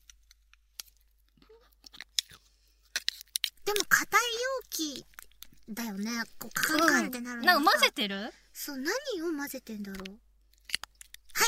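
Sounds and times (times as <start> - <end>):
chewing and crunching of food: 0.0 - 7.0, 9.9 - 11.4
speech: 3.7 - 5.1, 5.7 - 10.2.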